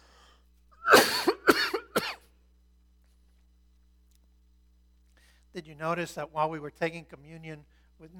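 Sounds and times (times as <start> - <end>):
person coughing after swallowing the wrong way: 0.8 - 2.3
speech: 5.6 - 8.1.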